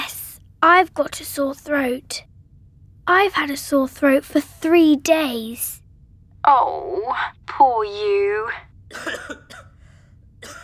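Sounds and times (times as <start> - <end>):
speech: 0.6 - 2.3, 3.1 - 5.8, 6.4 - 9.6
person with a lingering cough coughing raspily: 8.9 - 10.6.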